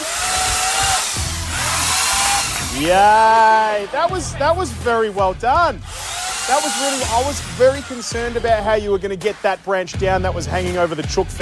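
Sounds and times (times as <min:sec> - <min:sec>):
electric chainsaw running: 0:00.0 - 0:04.0, 0:05.5 - 0:08.8
speech: 0:02.8 - 0:11.4.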